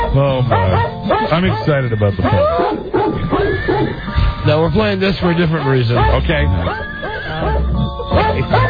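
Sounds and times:
speech: 0.1s - 3.0s, 3.8s - 7.6s, 8.4s - 8.6s
horse or pony neighing: 2.4s - 4.3s.

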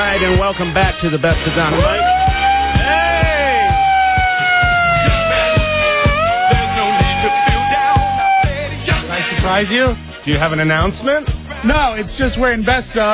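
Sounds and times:
speech: 0.0s - 2.4s, 9.4s - 13.1s
sharp rhythmic thumps: 0.0s - 13.1s
siren being tested in studio: 1.7s - 8.7s.

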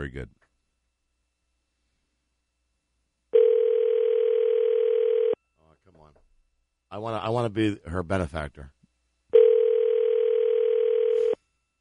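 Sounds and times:
speech: 0.0s - 0.4s, 6.9s - 8.8s
ringback tone on an outgoing telephone call: 3.3s - 5.4s, 9.3s - 11.4s.

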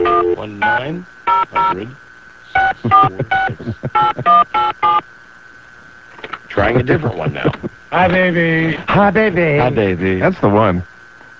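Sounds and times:
touch-tone beeps as a phone number is dialed: 0.0s - 1.8s, 2.6s - 5.0s
speech: 0.4s - 5.2s, 6.6s - 10.9s
laughter: 2.8s - 4.5s, 6.5s - 9.0s.

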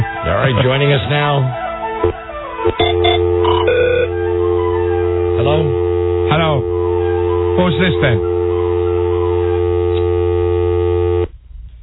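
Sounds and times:
speech: 0.3s - 4.2s, 5.4s - 6.7s, 7.6s - 8.3s
telephone dial tone after call hung up: 2.7s - 4.7s, 5.3s - 11.3s.

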